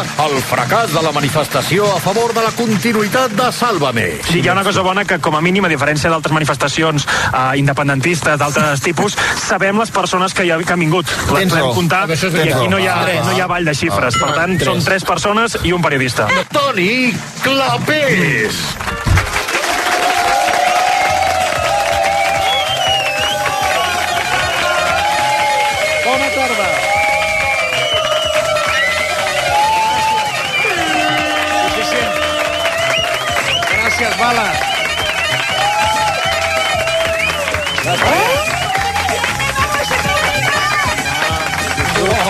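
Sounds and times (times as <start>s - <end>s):
speech: 0.0s - 19.1s
studio audience clapping: 0.0s - 42.2s
studio audience whooping and cheering: 19.2s - 42.2s.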